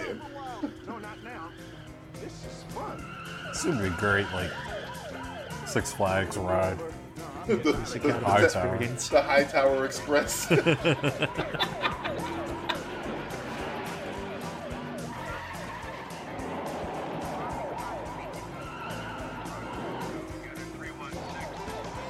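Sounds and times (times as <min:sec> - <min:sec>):
laughter: 0:00.0 - 0:02.4, 0:07.3 - 0:13.8
siren-like wail: 0:00.0 - 0:06.2, 0:11.4 - 0:22.0
speech: 0:00.1 - 0:01.6, 0:02.2 - 0:04.8, 0:05.7 - 0:12.1
tires skidding and squealing: 0:00.3 - 0:06.4, 0:08.1 - 0:22.0
car engines roaring in a car chase: 0:00.8 - 0:22.0.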